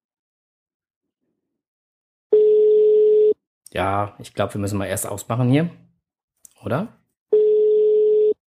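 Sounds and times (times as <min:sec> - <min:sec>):
telephone ringback tone: 0:02.3 - 0:03.4, 0:07.4 - 0:08.4
speech: 0:03.7 - 0:05.9, 0:06.6 - 0:07.0.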